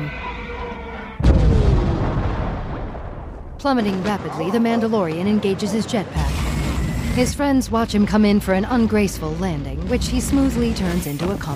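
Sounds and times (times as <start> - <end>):
loud explosion aboard a ship: 1.2 - 3.6
speech: 3.6 - 6.4, 7.2 - 11.5.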